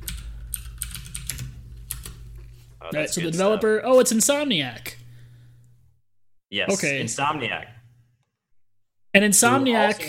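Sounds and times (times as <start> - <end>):
typing on a computer keyboard: 0.0 - 2.2
low hum: 0.0 - 8.3
speech: 2.8 - 5.0, 6.5 - 7.8, 9.2 - 10.0.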